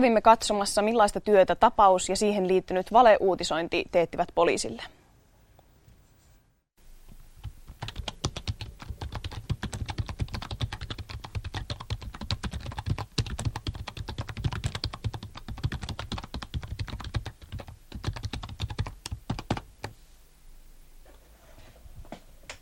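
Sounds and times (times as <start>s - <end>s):
speech: 0.0s - 5.0s
rapid typing on a computer keyboard: 7.4s - 19.7s.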